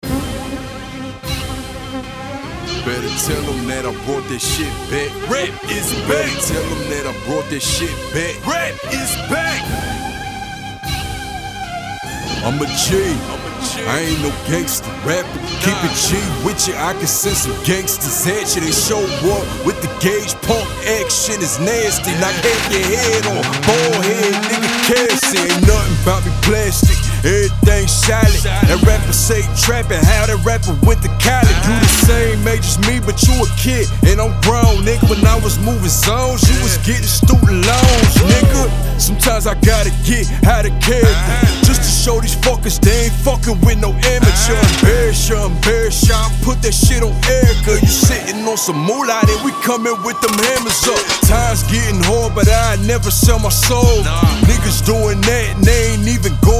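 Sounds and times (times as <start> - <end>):
hip hop mix: 0.0 - 56.5.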